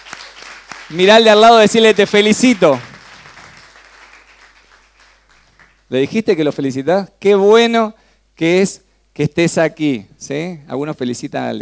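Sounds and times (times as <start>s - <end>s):
church congregation applauding: 0.0s - 5.9s
speech: 0.9s - 2.9s, 5.9s - 11.5s.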